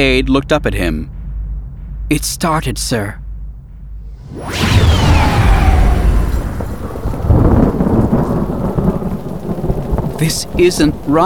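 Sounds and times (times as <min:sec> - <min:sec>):
speech: 0:00.0 - 0:01.2, 0:02.1 - 0:03.2, 0:04.3 - 0:05.0, 0:10.2 - 0:11.2
explosion with descending whoosh and deep sustained rumble: 0:04.0 - 0:11.2.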